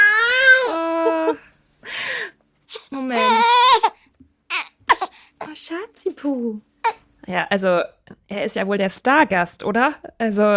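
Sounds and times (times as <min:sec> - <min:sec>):
baby crying: 0:00.0 - 0:05.7
speech: 0:05.7 - 0:10.5.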